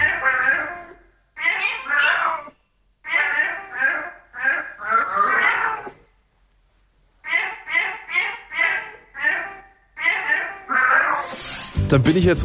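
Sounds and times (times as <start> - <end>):
male cat meowing a song melody: 0.0 - 6.0, 7.2 - 11.2.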